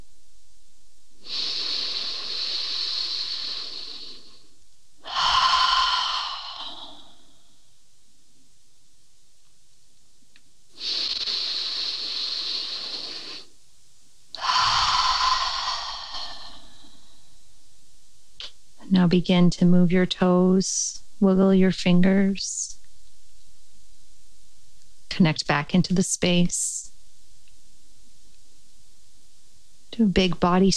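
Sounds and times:
deep breaths in and out during a guided relaxation: 1.2s - 7.6s, 10.8s - 13.5s, 14.4s - 17.4s
speech: 19.0s - 22.7s, 25.2s - 26.8s, 30.0s - 30.7s.

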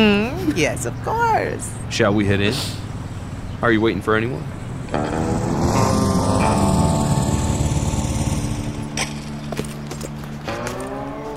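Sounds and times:
speech: 0.0s - 2.8s, 3.6s - 5.5s
motorcycle engine arriving and idling: 0.0s - 11.3s.

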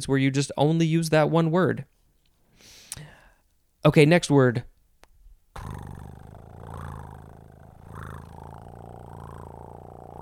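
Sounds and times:
speech: 0.0s - 2.0s, 3.8s - 4.7s, 5.6s - 6.0s
cat purring: 5.6s - 10.2s.

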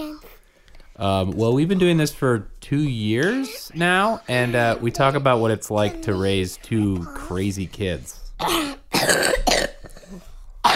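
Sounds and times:
speech: 1.0s - 10.3s
wet harsh cough: 8.4s - 10.7s.

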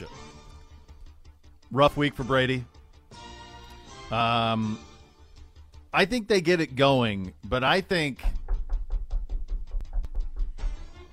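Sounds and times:
speech: 1.7s - 2.7s, 4.1s - 4.9s, 5.9s - 8.3s
knocking at the back door: 8.2s - 10.9s.

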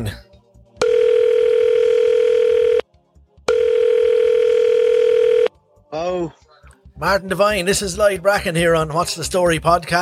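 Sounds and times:
speech: 0.0s - 0.3s, 6.0s - 6.4s, 7.0s - 9.9s
phone line ringing out with long steady electronic ringback tones: 0.8s - 2.8s, 3.5s - 5.5s.

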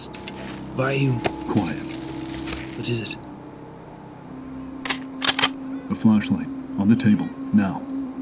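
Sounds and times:
deer grunting and snorting in a low rumbling growl: 0.0s - 3.2s
speech: 0.8s - 1.8s, 2.8s - 3.3s, 5.9s - 7.9s.

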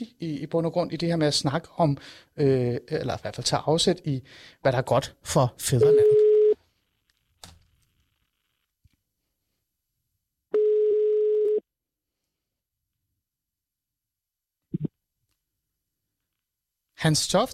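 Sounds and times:
speech: 0.0s - 6.2s, 17.0s - 17.5s
telephone ringing tone while placing a call: 5.8s - 6.6s, 10.6s - 11.6s.

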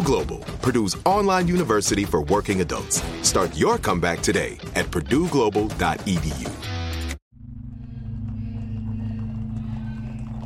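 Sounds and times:
speech: 0.1s - 6.6s
horse hooves clip-clopping while pulling a cart: 7.9s - 10.4s.

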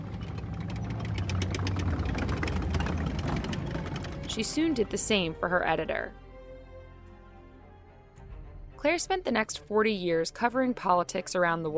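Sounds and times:
German tank engines rumbling: 0.0s - 5.7s
repetitive mechanical knocking: 0.1s - 4.6s
speech: 4.4s - 6.2s, 8.8s - 11.7s.

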